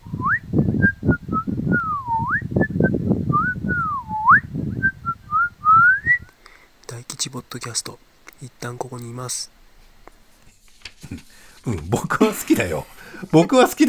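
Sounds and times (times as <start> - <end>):
person whistling a bouncy melody for a homemade jingle: 0.0 - 6.3
low rumble of wind buffeting the recording: 0.0 - 6.4
speech: 7.3 - 9.6, 11.0 - 13.8
laughter: 11.0 - 13.8.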